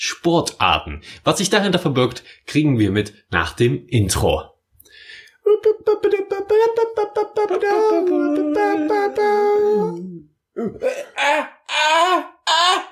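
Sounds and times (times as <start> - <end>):
speech: 0.1 - 4.5, 5.5 - 12.9
human voice imitating a raptor scream with screechy cries: 7.8 - 12.9.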